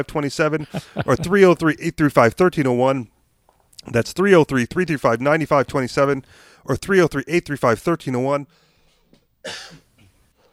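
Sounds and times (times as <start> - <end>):
speech: 0.0 - 3.1, 3.8 - 8.6, 9.4 - 9.8
laughter: 0.5 - 1.7
quiet breathing: 6.2 - 6.7, 8.5 - 9.3, 10.0 - 10.5
person coughing from food stuck in throat: 9.4 - 10.2
rough throat clearing: 9.4 - 10.2.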